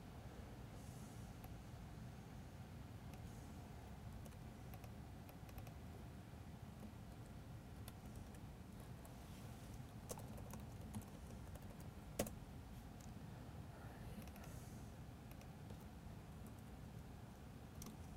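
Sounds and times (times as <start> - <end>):
steady low hum: 0.0 - 18.1
keystrokes on a computer keyboard: 4.2 - 5.8, 7.1 - 8.4, 10.0 - 12.4.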